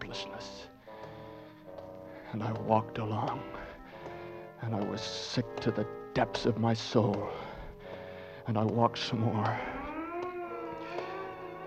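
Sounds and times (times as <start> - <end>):
speech: 2.3 - 3.6, 4.6 - 7.4, 8.5 - 9.8
distant siren wailing: 9.5 - 11.6.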